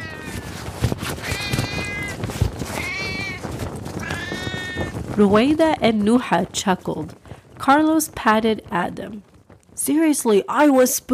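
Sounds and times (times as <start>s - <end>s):
inflatable cat decoration meowing electronically: 0.0s - 0.5s, 1.2s - 2.2s, 2.8s - 3.4s, 4.0s - 4.9s
faint noise: 0.0s - 11.1s
speech: 5.2s - 11.1s.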